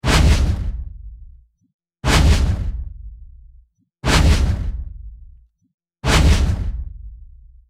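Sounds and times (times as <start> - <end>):
robot footsteps: 0.0 - 1.4, 2.0 - 3.5, 4.1 - 5.4, 6.1 - 7.3.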